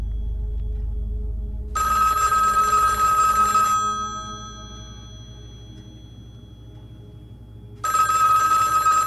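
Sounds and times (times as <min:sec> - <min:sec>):
low hum: 0:00.0 - 0:09.0
telephone ringing with a bright buzzy electronic trill: 0:01.8 - 0:06.8, 0:07.7 - 0:09.0.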